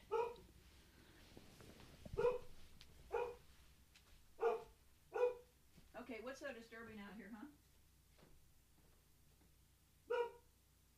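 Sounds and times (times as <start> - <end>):
dog barking: 0.0 - 0.4, 2.2 - 2.5, 3.1 - 3.4, 4.4 - 5.5, 10.1 - 10.5
speech: 6.1 - 7.7.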